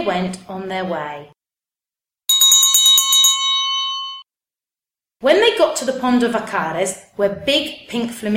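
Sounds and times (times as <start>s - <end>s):
speech: 0.0s - 1.4s, 5.2s - 8.3s
bull herdsman's bell clanging at the pond of Vacares in the Camargue: 2.3s - 4.2s.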